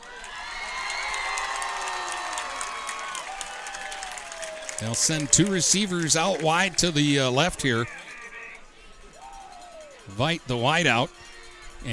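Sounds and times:
whoops: 0.0s - 5.5s, 9.2s - 10.0s
people clapping: 0.0s - 8.3s
cheer squad cheering at a football game: 0.0s - 11.9s
speech: 4.8s - 8.0s, 10.2s - 11.2s.

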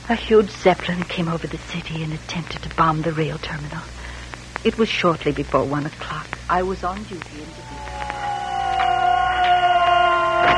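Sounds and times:
speech: 0.1s - 8.0s
faint clicks: 0.8s - 10.5s
air raid siren wailing over a city: 7.4s - 10.5s.

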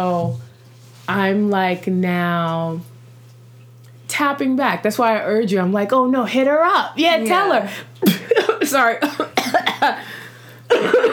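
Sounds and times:
speech: 0.0s - 0.4s, 1.1s - 2.9s, 4.2s - 10.2s
harsh coughing fit: 8.0s - 10.1s, 10.7s - 11.1s.

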